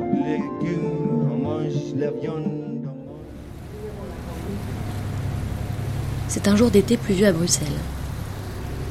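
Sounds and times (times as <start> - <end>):
speech: 0.2 - 1.0, 1.7 - 3.0, 6.3 - 8.0
low droning motor of a small tour boat on a canal: 3.1 - 8.8
hissing wash of water from a boat on a canal: 3.2 - 8.8.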